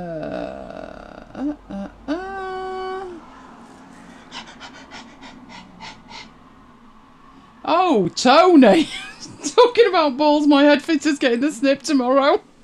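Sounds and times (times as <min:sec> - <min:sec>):
speech: 0:01.4 - 0:02.0, 0:07.9 - 0:09.0, 0:09.9 - 0:12.5
dog panting: 0:03.8 - 0:06.4.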